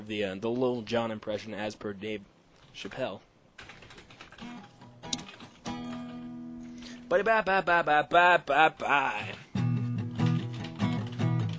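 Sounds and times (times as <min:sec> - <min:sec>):
speech: 0:00.1 - 0:03.8, 0:07.1 - 0:09.5
fingers typing on a computer keyboard: 0:03.6 - 0:06.1, 0:10.2 - 0:11.5.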